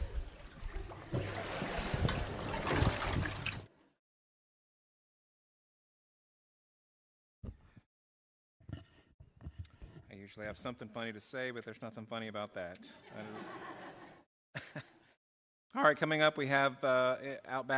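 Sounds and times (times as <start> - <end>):
water trickling and splashing in a baptismal tank during a baptism: 0.0 - 3.7
speech: 10.2 - 13.8, 15.8 - 17.7
laughter: 12.8 - 15.1.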